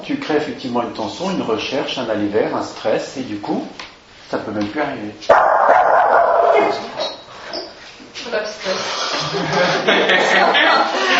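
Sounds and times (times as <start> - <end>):
speech: 0.1 - 5.6, 6.6 - 7.1, 8.2 - 11.1
dog barking and yipping: 5.3 - 7.1
laughter: 9.1 - 11.1.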